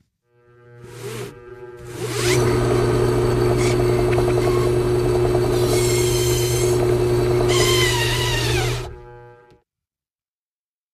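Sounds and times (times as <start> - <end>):
power drill whirring: 0.9 - 9.2.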